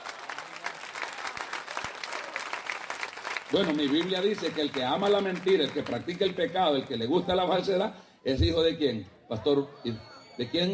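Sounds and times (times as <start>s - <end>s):
audience clapping steadily: 0.0s - 7.5s
speech: 3.5s - 10.7s.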